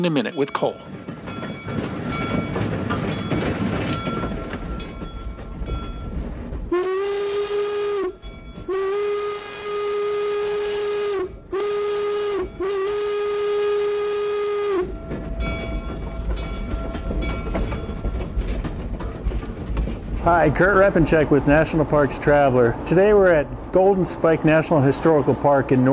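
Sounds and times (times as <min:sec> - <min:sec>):
speech: 0:00.0 - 0:01.4, 0:20.4 - 0:25.9
steam locomotive rumbling and chugging: 0:00.0 - 0:25.9
steam locomotive whistle blasts: 0:06.7 - 0:15.0.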